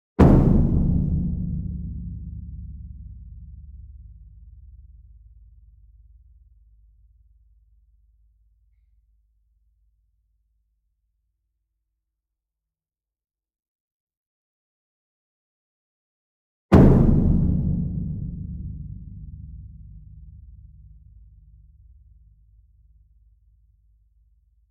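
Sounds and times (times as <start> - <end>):
large concert bass drum medium hit: 0.2 - 4.4, 16.8 - 21.8.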